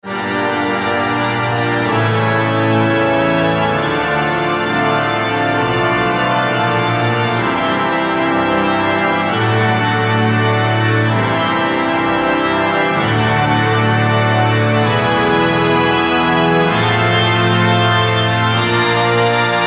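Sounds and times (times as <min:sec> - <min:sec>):
Memotron church organ: 0:00.0 - 0:19.6.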